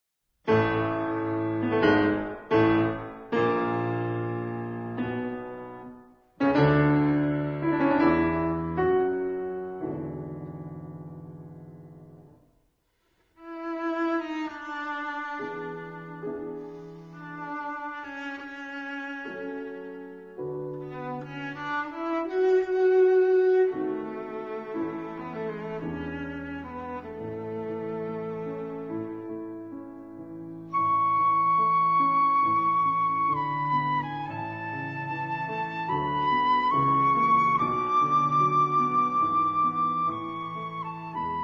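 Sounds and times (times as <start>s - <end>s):
piano: 0.4s - 41.4s
cello: 0.5s - 10.4s, 13.2s - 41.4s
flute: 30.6s - 41.4s.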